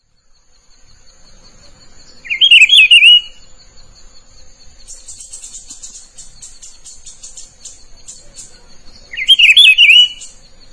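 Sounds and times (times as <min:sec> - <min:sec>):
rufous-browed peppershrike warbled whistled phrase: 0:02.2 - 0:03.4, 0:09.1 - 0:10.4.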